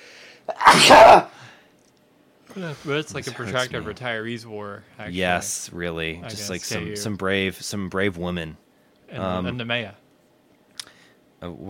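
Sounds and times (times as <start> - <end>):
single loud human sneeze after a sharp intake of breath: 0.5 - 1.4
speech: 0.7 - 1.3, 2.6 - 10.0, 11.4 - 11.6.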